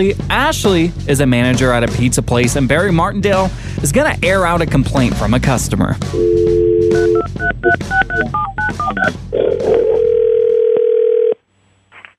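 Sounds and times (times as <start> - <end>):
speech: 0.0 - 9.3
long continuous telephone ringing tone: 6.2 - 7.8, 9.3 - 11.4
steady telephone dial tone: 9.4 - 11.4.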